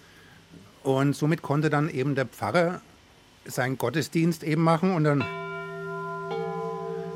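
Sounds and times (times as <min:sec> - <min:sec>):
speech: 0:00.8 - 0:05.4
altar bells ringing: 0:05.2 - 0:07.1.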